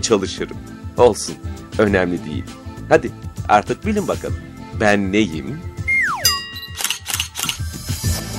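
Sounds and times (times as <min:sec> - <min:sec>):
speech: 0:00.0 - 0:05.7
falling electronic tone: 0:05.9 - 0:06.6
bright beep: 0:05.9 - 0:07.1
camera shutter clicks: 0:06.8 - 0:07.7.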